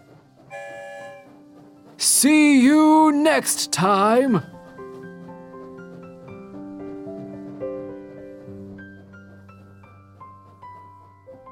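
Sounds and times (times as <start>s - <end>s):
train horn blast arriving at a station: 0.5s - 1.6s
speech: 2.1s - 4.5s.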